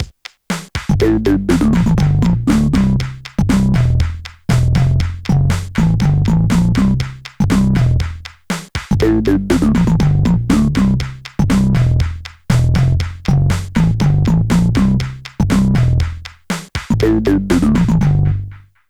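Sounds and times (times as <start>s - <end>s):
drums: 0.0s - 18.8s
bass: 0.9s - 18.8s.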